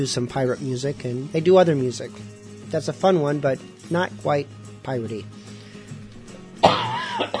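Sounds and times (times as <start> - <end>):
speech: 0.0 - 5.5, 6.6 - 7.3
person clearing throat: 6.6 - 7.3
person coughing: 6.6 - 7.3.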